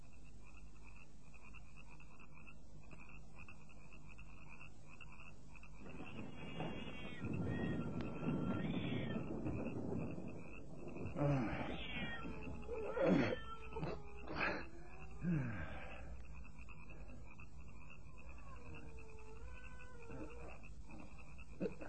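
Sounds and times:
frogs croaking at night: 0.0s - 21.8s
insect hum at night: 0.0s - 21.8s
cat meowing: 6.4s - 9.7s, 11.4s - 14.3s.

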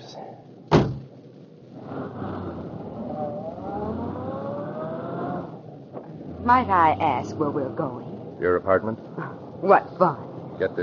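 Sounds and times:
car door slamming shut: 0.7s - 1.1s
car engine starting and humming as the car pulls away: 0.7s - 10.8s
speech: 6.4s - 10.8s.

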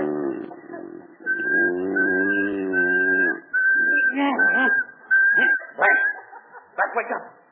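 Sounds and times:
low droning whimper-like sounds: 0.0s - 5.5s
steady single-pitch whistle: 1.2s - 6.3s.

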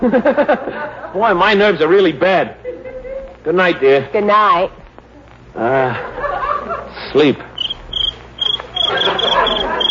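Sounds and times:
laughter: 0.0s - 1.3s, 2.6s - 3.4s, 5.6s - 7.2s, 8.6s - 9.8s
speech: 0.0s - 2.6s, 3.4s - 4.8s, 5.6s - 7.5s
soft murmur of noise: 2.6s - 7.2s
little cricket chirping in the country at night: 7.6s - 9.8s.

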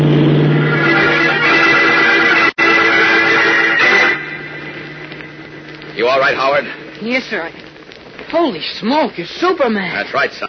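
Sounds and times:
car engine roaring as it speeds past: 0.0s - 6.0s
speech: 6.2s - 7.6s, 8.3s - 10.4s.

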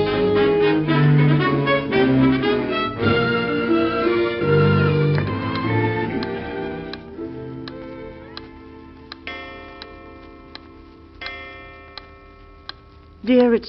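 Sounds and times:
low sustained hum or musical drone: 0.0s - 12.8s
clock ticking: 5.1s - 13.6s
speech: 13.3s - 13.6s.

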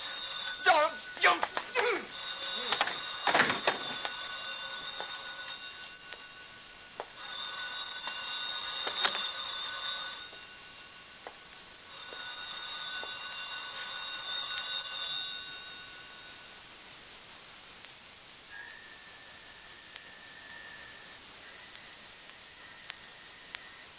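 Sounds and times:
old-fashioned telephone bell ringing: 0.0s - 11.2s, 11.8s - 16.6s.

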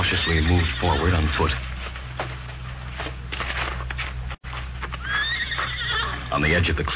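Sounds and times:
horse whinnying: 0.0s - 1.4s, 5.0s - 6.4s
hoof clops: 0.0s - 6.3s
low rumble of outdoor noise: 0.0s - 6.9s
speech: 0.1s - 1.7s, 6.4s - 6.9s
shuffling: 0.3s - 5.7s.

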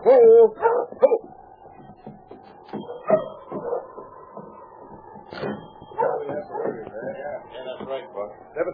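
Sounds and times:
speech: 0.0s - 1.2s
sled dog team barking and yipping: 0.0s - 1.3s, 2.7s - 4.0s, 5.4s - 6.8s.

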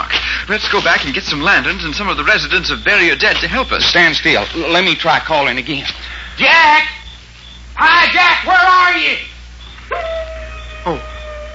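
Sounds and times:
speech: 0.5s - 7.0s, 7.8s - 9.3s, 10.8s - 11.1s
thin steady drawn-out tone: 1.3s - 11.5s
wolf barking yips at night: 9.6s - 11.5s.

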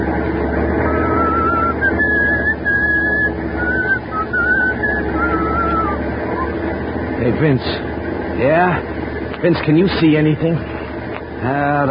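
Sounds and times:
truck hauling high explosives along a foggy mountain highway: 0.0s - 11.9s
thin wavering high tones: 0.8s - 6.8s
speech: 7.4s - 10.7s, 11.4s - 11.9s.

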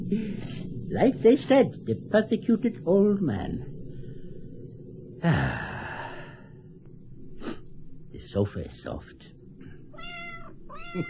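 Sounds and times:
speech: 0.1s - 3.7s, 5.2s - 5.7s, 8.3s - 9.3s
old cat meowing to be lifted up: 10.0s - 11.0s.

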